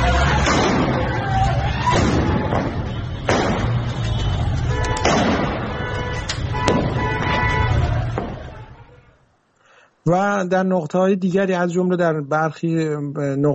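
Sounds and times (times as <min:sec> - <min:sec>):
crowd din: 0:00.0 - 0:09.2
street noise rumble: 0:00.0 - 0:09.6
sharp gunshots fired by security forces at street protesters: 0:00.4 - 0:01.2, 0:01.9 - 0:04.0, 0:05.0 - 0:05.9
speech: 0:10.1 - 0:13.5.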